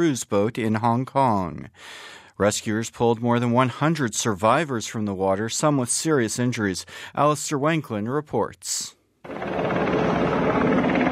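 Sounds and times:
speech: 0.0s - 9.6s
helicopter hovering over a sinking cruise boat: 9.3s - 11.1s.

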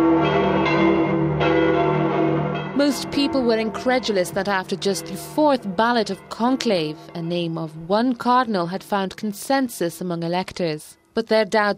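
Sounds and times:
church bells ringing at the Vatican after a papal election: 0.0s - 9.2s
speech: 2.8s - 11.7s.

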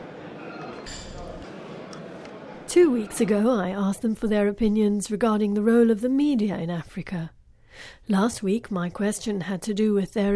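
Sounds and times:
din of conversation: 0.0s - 3.5s
coffee cups clinking during a coffee break: 0.6s - 1.6s
speech: 2.7s - 10.3s.

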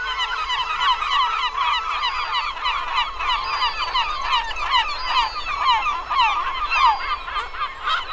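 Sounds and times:
large flock of seagulls screeching and squawking: 0.0s - 8.1s.

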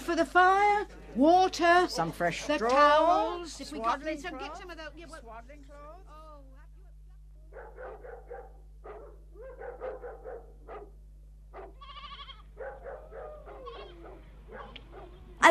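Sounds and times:
speech: 0.1s - 6.2s
flock of sheep bleating as it is brought in: 11.6s - 12.6s, 13.4s - 14.2s.

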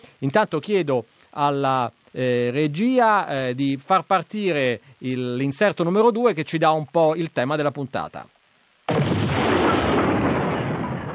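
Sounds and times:
speech: 0.2s - 8.4s
explosion: 8.9s - 11.1s.

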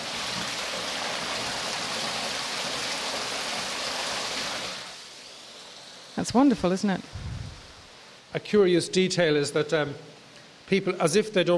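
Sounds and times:
small waterfall of spring water splashing: 0.0s - 6.1s
speech: 6.2s - 7.2s, 8.4s - 10.1s, 10.7s - 11.5s.

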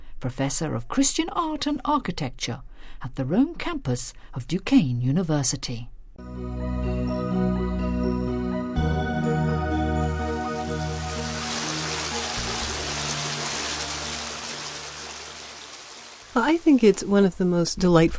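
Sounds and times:
speech: 0.2s - 6.8s, 16.4s - 18.1s
sustained musical tones: 6.2s - 16.9s
city fountain water splashing and rushing in Rome: 10.2s - 17.4s.

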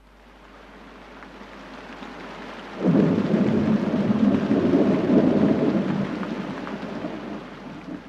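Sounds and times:
steady rain hissing: 0.0s - 8.0s
deep roll of thunder rumbling: 2.8s - 8.0s.

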